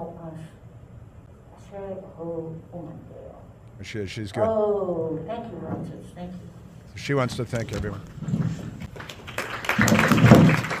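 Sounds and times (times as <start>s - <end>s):
speech: 1.7s - 8.8s
applause from an audience: 8.9s - 10.7s.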